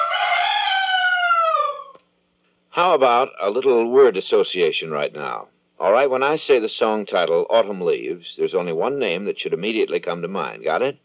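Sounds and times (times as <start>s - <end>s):
rooster crowing: 0.0s - 2.0s
speech: 2.8s - 11.0s.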